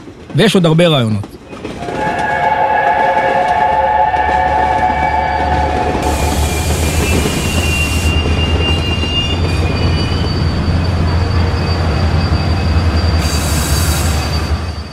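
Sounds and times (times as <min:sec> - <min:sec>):
train rumbling along the rails: 0:00.0 - 0:14.9
speech: 0:00.4 - 0:01.4
train wheels squealing: 0:01.5 - 0:14.9
hissing noise from a train: 0:02.2 - 0:08.4.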